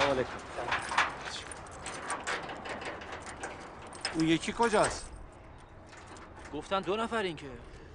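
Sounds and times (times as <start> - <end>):
speech: 0.2 - 0.8, 4.2 - 5.1, 6.5 - 7.7
bunch of keys jingling while someone looks for the right key: 0.6 - 6.4.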